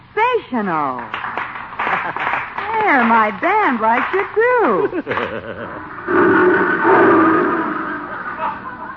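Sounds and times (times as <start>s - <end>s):
speech: 0.4s - 1.2s, 2.0s - 7.6s
laughter: 1.8s - 3.4s, 4.0s - 6.1s, 8.1s - 8.9s
lion roaring: 5.8s - 8.9s.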